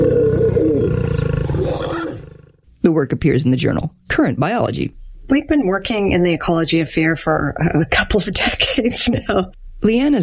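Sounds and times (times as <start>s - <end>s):
lion snarling and roaring: 0.0s - 2.7s
speech: 2.9s - 10.2s.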